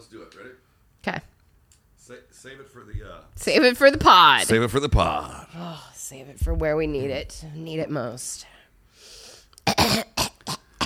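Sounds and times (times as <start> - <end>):
speech: 0.1 - 1.3, 2.1 - 8.5
person clearing throat of phlegm: 9.6 - 10.8.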